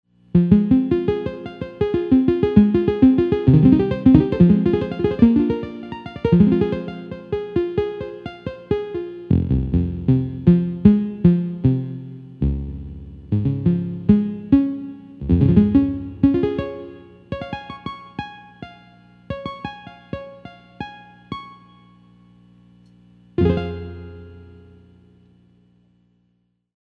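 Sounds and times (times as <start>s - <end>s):
pro piano clavichord harp solo: 0.4s - 11.8s, 13.3s - 21.7s, 23.4s - 24.8s
combo organ: 0.4s - 21.7s, 23.4s - 24.9s.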